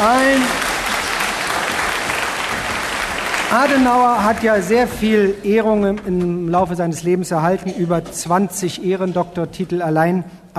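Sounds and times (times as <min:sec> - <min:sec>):
crowd clapping and cheering: 0:00.0 - 0:05.4
speech: 0:03.5 - 0:10.5.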